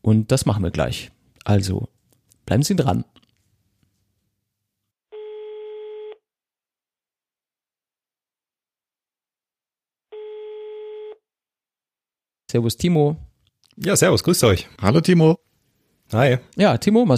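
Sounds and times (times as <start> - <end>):
speech: 0.1 - 3.2, 12.5 - 15.5, 16.1 - 17.1
ringing tone of an outgoing telephone call: 5.1 - 6.2, 10.1 - 11.2.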